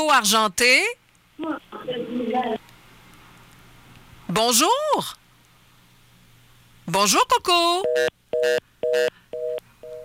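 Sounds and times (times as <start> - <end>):
speech: 0.0 - 2.6, 4.3 - 5.2, 6.9 - 9.2
telephone line tone beeps after a dropped call: 7.8 - 10.0.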